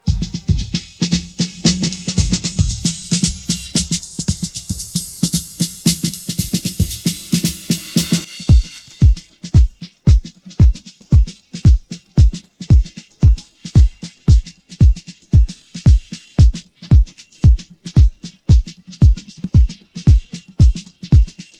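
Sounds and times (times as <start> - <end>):
drum pattern: 0.0 - 21.5.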